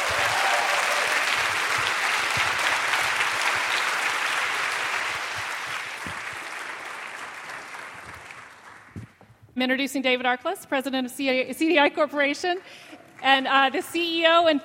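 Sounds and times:
sustained applause from a sizable audience: 0:00.0 - 0:09.2
speech: 0:09.6 - 0:14.6.

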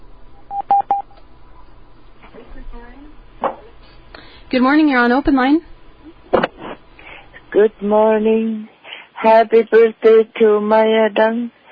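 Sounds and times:
touch-tone beeps as a phone line connects: 0:00.5 - 0:01.1
speech: 0:04.5 - 0:05.7, 0:07.6 - 0:11.6.

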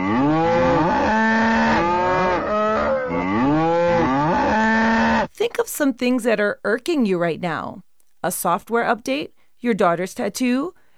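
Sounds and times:
cows mooing: 0:00.0 - 0:05.3
speech: 0:05.4 - 0:10.8.

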